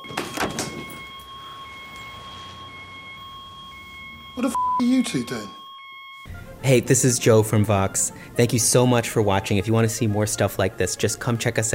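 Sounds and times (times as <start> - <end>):
locked security door being tried with rattling clunks: 0.0 - 1.1
speech: 4.4 - 5.6, 6.6 - 11.7.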